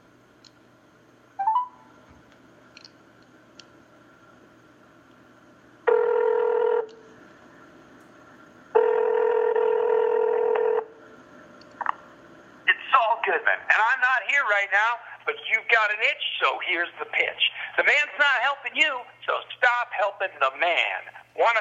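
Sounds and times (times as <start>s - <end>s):
phone ringback tones over a speakerphone: 1.4s - 1.8s, 5.9s - 6.9s, 8.8s - 10.8s
speech: 13.6s - 21.6s.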